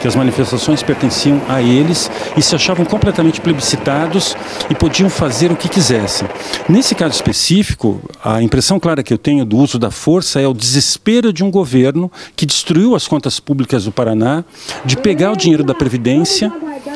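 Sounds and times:
helicopter flying over a street protest: 0:00.0 - 0:07.5, 0:14.7 - 0:16.9
speech: 0:00.0 - 0:16.9.

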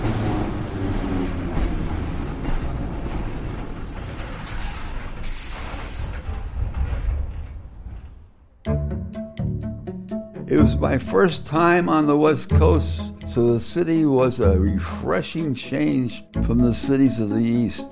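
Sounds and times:
train rolling into a station: 0:00.0 - 0:09.2, 0:10.1 - 0:17.9
train air hissing: 0:04.4 - 0:06.2
speech: 0:10.5 - 0:17.9.

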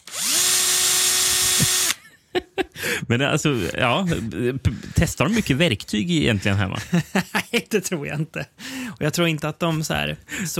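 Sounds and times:
Bosch PSR 1800 cordless drill running: 0:00.0 - 0:02.0
laughter: 0:02.0 - 0:02.9, 0:06.3 - 0:08.5
speech: 0:02.4 - 0:10.5.

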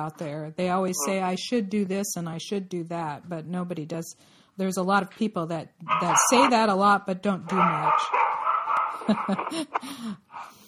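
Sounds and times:
speech: 0:00.0 - 0:08.2, 0:09.0 - 0:10.6
dogs barking and whimpering with high yips: 0:05.9 - 0:06.7, 0:07.5 - 0:09.7
laughter: 0:08.9 - 0:10.0.

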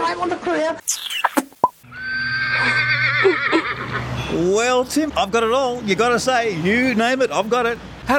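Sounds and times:
speech: 0:00.2 - 0:01.0, 0:04.3 - 0:08.1
Shetland pony whinnying: 0:00.9 - 0:04.0.

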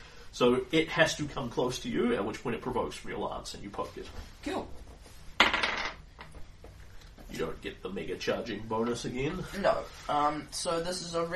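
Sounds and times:
speech: 0:00.4 - 0:04.8, 0:07.3 - 0:11.3
dice tumbling across a hard surface: 0:05.4 - 0:06.0.

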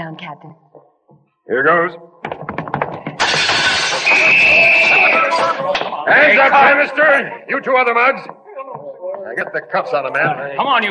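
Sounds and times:
speech: 0:00.0 - 0:00.8, 0:01.5 - 0:02.5, 0:04.2 - 0:10.8
window glass shattering: 0:03.2 - 0:05.8.

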